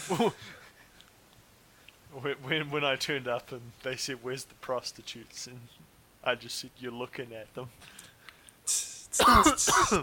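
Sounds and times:
speech: 0.1 - 0.6, 2.1 - 8.1, 8.7 - 10.0
person imitating a cough with a throaty rasp: 9.2 - 10.0.

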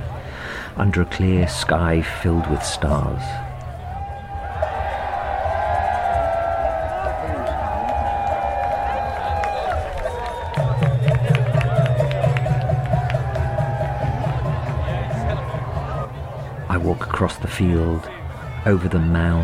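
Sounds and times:
crowd of revelers and tourists overlapping voices at Stonehenge on summer solstice night: 0.0 - 19.4
speech: 0.8 - 3.5, 17.2 - 19.4
revelers shouting: 1.0 - 16.4.

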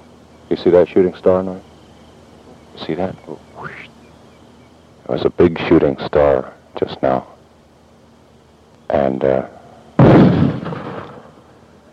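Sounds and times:
speech: 0.5 - 1.7, 2.8 - 3.9, 5.1 - 7.3, 8.9 - 10.4
mortar firing about 40 feet behind: 10.0 - 11.3.

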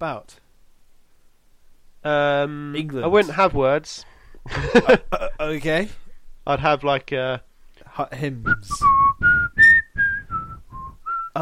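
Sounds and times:
speech: 0.0 - 0.4, 2.0 - 9.0
breaths: 4.0 - 4.7
person whistling a short melodic phrase: 8.5 - 11.4.

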